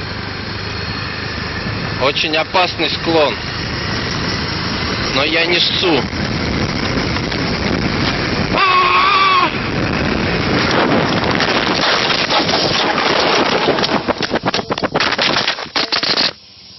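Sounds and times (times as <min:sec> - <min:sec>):
wind roar from a fast bike ride down a slope: 0:00.0 - 0:15.8
speech: 0:02.0 - 0:04.0, 0:05.2 - 0:06.3
high wavering cry: 0:08.5 - 0:09.8.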